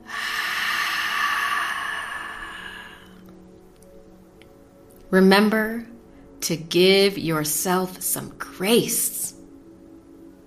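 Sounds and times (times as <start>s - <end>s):
deep breath in through the nose, out through the mouth: 0.0s - 3.4s
speech: 5.1s - 9.4s.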